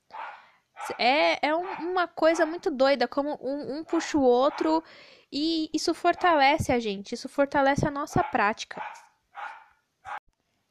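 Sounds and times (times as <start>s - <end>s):
dogs barking: 0.0s - 2.7s, 4.4s - 4.8s, 6.1s - 6.4s, 8.1s - 10.2s
speech: 0.9s - 9.0s.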